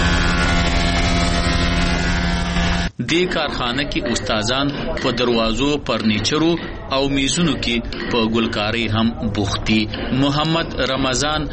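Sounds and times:
woodworking machine cutting timber for doors in a carpentry factory: 0.0 - 6.8
speech: 3.1 - 11.5.

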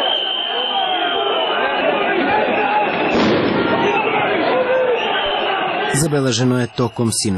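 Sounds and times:
crowd of opposition supporters roaring and shouting in a clash with police in Podgorica: 0.0 - 7.3
police stun grenade blast: 2.9 - 4.3
speech: 6.0 - 7.3.

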